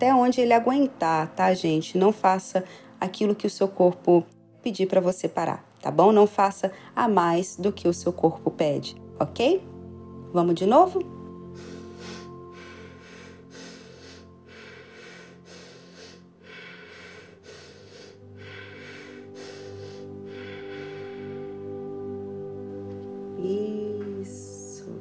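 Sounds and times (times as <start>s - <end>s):
speech: 0.0s - 9.7s, 10.3s - 11.7s
forceful deep breathing exercise inhales and exhales: 11.4s - 22.2s.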